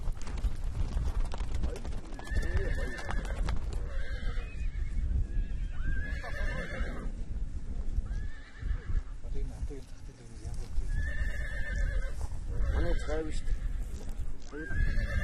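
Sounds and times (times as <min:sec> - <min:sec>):
hooves stamping and clopping on the ground: 0:00.0 - 0:15.2
horse neighing and whinnying: 0:02.2 - 0:07.2, 0:08.1 - 0:09.1, 0:10.9 - 0:13.9, 0:14.5 - 0:15.2.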